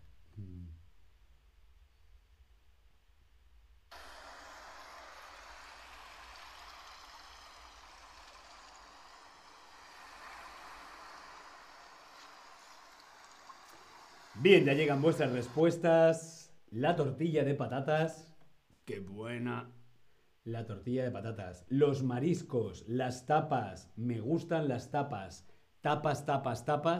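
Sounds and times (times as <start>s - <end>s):
sea waves roaring and washing in: 4.0s - 15.7s
speech: 14.4s - 18.3s, 18.9s - 19.8s, 20.4s - 26.9s.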